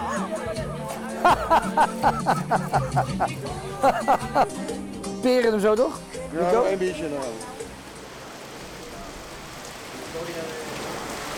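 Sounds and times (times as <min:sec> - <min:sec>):
laughter: 0:00.0 - 0:04.5
heavy rain pouring during a thunderstorm: 0:01.2 - 0:04.5, 0:06.9 - 0:11.3
speech: 0:01.2 - 0:07.6.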